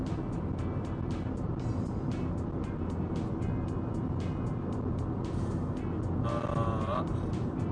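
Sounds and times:
car engine and tire road noise inside a car on a highway incline: 0.0s - 7.7s
highway traffic passing: 0.0s - 7.7s.

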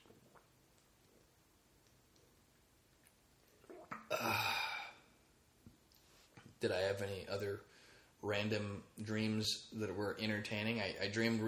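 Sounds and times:
person sipping water: 0.0s - 2.4s, 3.0s - 5.1s
soft gulp of water: 3.4s - 5.0s
speech: 6.6s - 11.4s.

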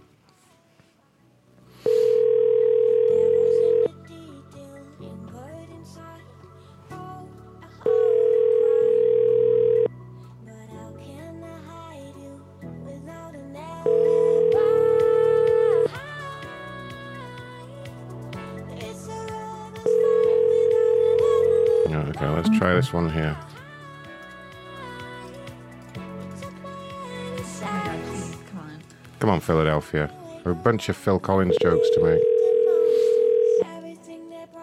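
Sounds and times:
telephone ringback tone on a call to a number in Philadelphia: 1.8s - 3.9s, 7.9s - 9.9s, 13.9s - 15.9s, 19.9s - 23.0s, 31.5s - 33.6s
speech: 22.8s - 23.5s, 29.3s - 32.3s.

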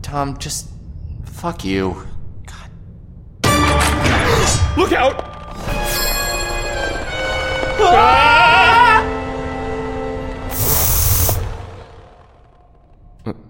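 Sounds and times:
speech: 0.0s - 2.1s, 4.5s - 5.3s, 7.8s - 8.4s
steady droning background: 0.0s - 13.3s
aerosol body spray hissing: 10.5s - 11.5s.

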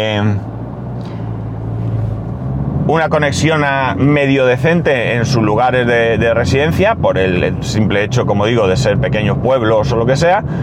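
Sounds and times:
speech: 0.0s - 1.2s, 2.9s - 10.6s
cars passing by outside: 0.0s - 10.6s
tires hissing: 0.0s - 10.6s.

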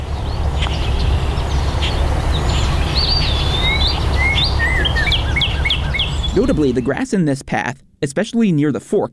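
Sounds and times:
birds chirping and whistling in a park: 0.0s - 7.0s
steady low outdoor rumble: 0.0s - 8.0s
speech: 6.4s - 9.1s.

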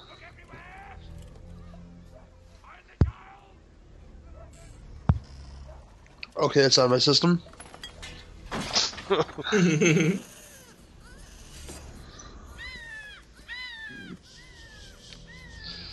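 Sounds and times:
speech: 6.4s - 7.5s, 9.1s - 10.3s
laughter: 8.9s - 10.4s
bird calling loudly: 12.1s - 15.9s.

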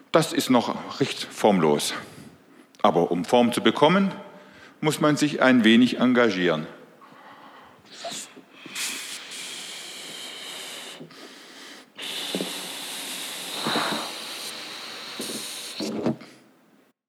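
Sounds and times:
speech: 0.1s - 2.1s, 2.8s - 6.8s
person blowing up a balloon by mouth: 7.9s - 16.2s.

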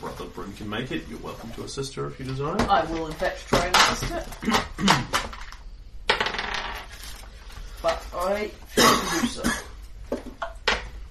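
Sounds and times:
speech: 0.3s - 5.3s, 7.8s - 9.6s
dice clattering across a hard tabletop in a tabletop game: 5.1s - 7.1s.

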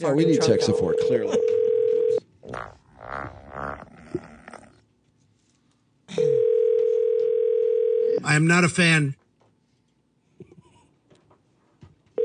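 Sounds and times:
speech: 0.0s - 1.7s, 8.3s - 9.2s
telephone tone after dialing an extension number: 0.2s - 2.2s, 6.2s - 8.2s
low grunting-like noises: 2.4s - 4.8s.

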